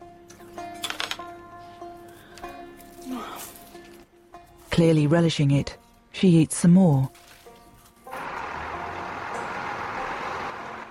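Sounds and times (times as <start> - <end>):
speech: 4.8 - 7.2
heavy refuse truck engine starting up and running outdoors: 8.1 - 10.8.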